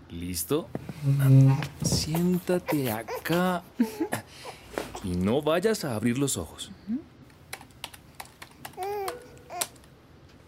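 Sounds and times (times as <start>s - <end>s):
speech: 0.1s - 7.0s
child typing on a computer keyboard: 7.5s - 9.9s
young child babbling: 8.8s - 9.6s.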